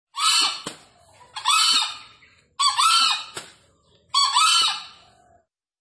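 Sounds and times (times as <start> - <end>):
wild green junglefowl crowing from up in a tree: 0.1 - 3.4, 4.1 - 5.5.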